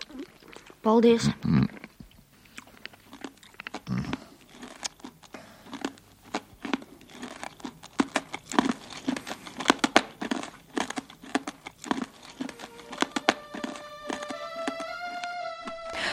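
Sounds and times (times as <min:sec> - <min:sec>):
crunchy chewing: 0:00.0 - 0:16.0
speech: 0:00.8 - 0:01.8
candy wrappers crinkling as red anise-flavoured candies are unwrapped: 0:01.7 - 0:16.1
bright sustained musical tone: 0:12.3 - 0:16.1.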